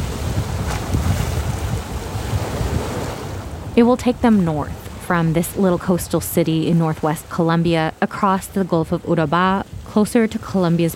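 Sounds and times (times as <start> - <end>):
steady wind buffeting the microphone on a coast in northwest Colombia: 0.0 - 5.1, 8.8 - 10.9
low rumbling wash of water on the Gulf of Urabá: 0.0 - 10.9
speech: 3.8 - 10.9.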